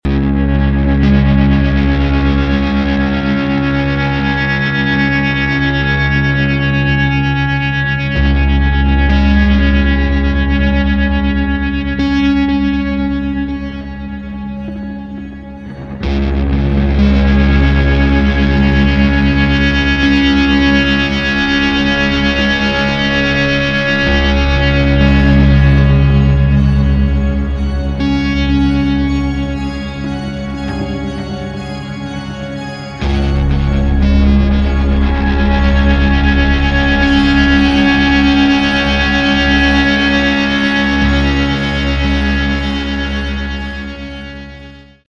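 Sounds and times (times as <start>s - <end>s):
electric cello blues drone: 0.1s - 45.0s.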